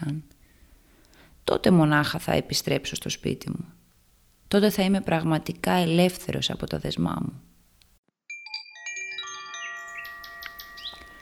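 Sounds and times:
speech: 0:01.5 - 0:03.8, 0:04.5 - 0:07.5
nightingales singing with whistled notes and trills: 0:09.5 - 0:11.1.

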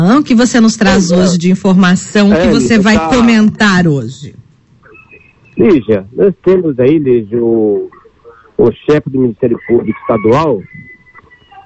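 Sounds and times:
speech: 0:00.0 - 0:04.4, 0:05.6 - 0:08.0, 0:08.6 - 0:10.9
rooster crowing: 0:09.6 - 0:11.6.

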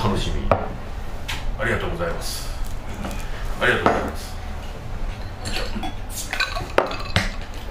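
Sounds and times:
speech: 0:00.1 - 0:00.6, 0:01.6 - 0:04.1
glasses clinking in a toast: 0:05.1 - 0:07.5.

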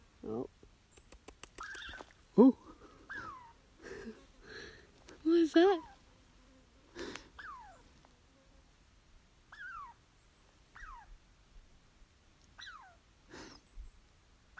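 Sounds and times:
agitated squirrel giving sharp descending squeaky calls: 0:00.9 - 0:02.2, 0:03.1 - 0:03.6, 0:07.4 - 0:07.8, 0:09.5 - 0:10.0, 0:10.7 - 0:11.2, 0:12.5 - 0:13.0
speech: 0:02.4 - 0:02.6, 0:05.5 - 0:05.9.

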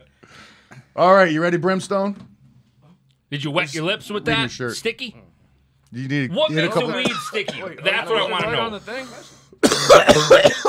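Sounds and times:
speech: 0:00.3 - 0:02.3, 0:03.3 - 0:05.2, 0:05.9 - 0:10.6
harsh coughing: 0:06.8 - 0:10.6.

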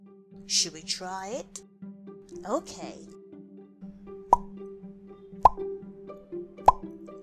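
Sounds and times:
speech: 0:00.5 - 0:01.7, 0:02.3 - 0:03.2
wet mouth pops: 0:04.3 - 0:04.5, 0:05.4 - 0:05.6.

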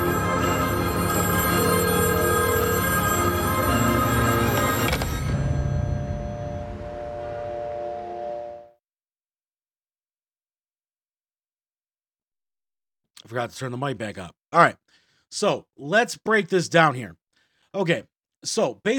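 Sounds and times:
telephone bell ringing: 0:00.0 - 0:07.4
speech: 0:13.3 - 0:18.9.

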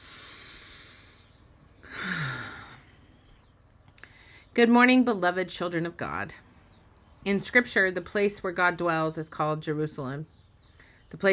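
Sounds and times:
person breathing in through the nose and out through the mouth: 0:00.0 - 0:03.4
speech: 0:04.6 - 0:06.5, 0:07.2 - 0:10.4, 0:11.1 - 0:11.3.

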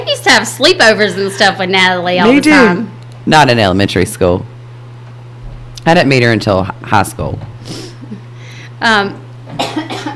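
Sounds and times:
low steady hum: 0:00.0 - 0:10.1
speech: 0:00.3 - 0:04.5, 0:05.8 - 0:08.2, 0:08.8 - 0:09.6
person coughing: 0:09.5 - 0:10.1.

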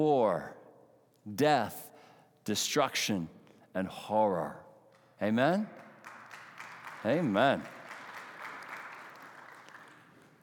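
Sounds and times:
speech: 0:00.0 - 0:00.6, 0:01.2 - 0:01.8, 0:02.4 - 0:04.6, 0:05.2 - 0:05.8, 0:07.0 - 0:07.8
crowd applauding: 0:05.8 - 0:10.4.

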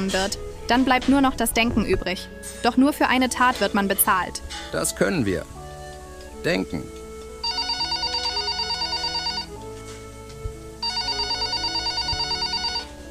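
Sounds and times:
speech: 0:00.0 - 0:05.6, 0:06.4 - 0:07.0
telephone ringing in fast-trilling electronic bursts: 0:07.4 - 0:09.6, 0:10.8 - 0:13.0.

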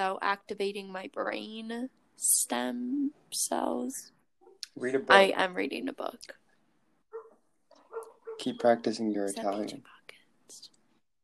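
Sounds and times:
speech: 0:00.0 - 0:04.2, 0:04.8 - 0:06.4, 0:08.4 - 0:10.7
household dog barking: 0:07.1 - 0:08.6.

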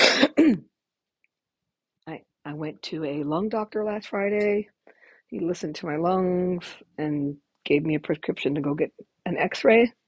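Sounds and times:
harsh raspy coughs from a person with a persistent cough: 0:00.0 - 0:00.6
speech: 0:02.1 - 0:10.0.

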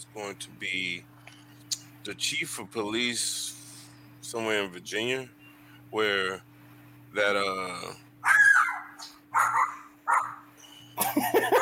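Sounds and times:
low steady hum: 0:00.0 - 0:11.6
speech: 0:00.2 - 0:01.2, 0:02.0 - 0:03.6, 0:04.2 - 0:06.5, 0:07.1 - 0:08.0
police canine unit dog barking: 0:08.2 - 0:10.4
laughter: 0:11.0 - 0:11.6.

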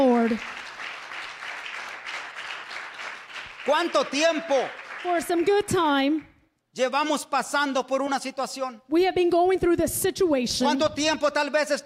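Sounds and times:
speech: 0:00.0 - 0:00.6, 0:03.7 - 0:11.8
large crowd applauding: 0:00.2 - 0:06.3.

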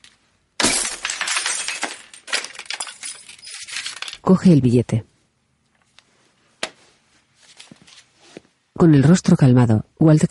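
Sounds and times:
glass fragments clinking and tinkling: 0:00.6 - 0:04.3
glass picture frame smashed against the corner of a counter: 0:00.6 - 0:04.3
speech: 0:04.2 - 0:05.1, 0:08.8 - 0:10.3.

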